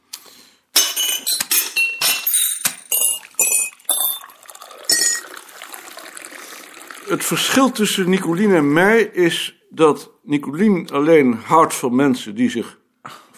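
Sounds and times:
glass clinking: 0:00.8 - 0:07.2
cognac and port pouring into glasses: 0:02.1 - 0:08.7
speech: 0:07.1 - 0:12.8.

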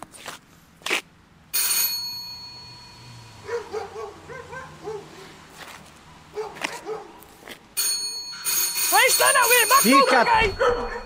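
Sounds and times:
doorbell ringing at front door of house: 0:01.6 - 0:03.4, 0:07.8 - 0:11.0
dog barking excitedly: 0:03.5 - 0:05.2, 0:06.3 - 0:07.2, 0:10.6 - 0:11.0
speech: 0:09.4 - 0:11.0.

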